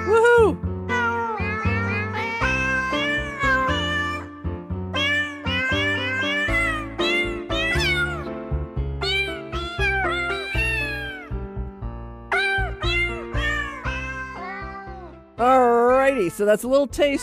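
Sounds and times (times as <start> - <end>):
cat meows pitched into a bouncy holiday-style jingle song: 0.0 - 4.3, 5.0 - 8.3, 9.0 - 11.3, 12.3 - 15.1
steady musical backing: 0.0 - 17.2
speech: 16.4 - 17.2.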